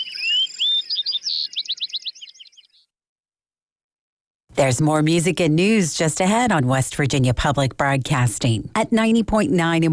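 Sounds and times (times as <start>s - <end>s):
bunting singing a song of trills and whistles: 0.0s - 2.9s
speech: 4.6s - 9.9s.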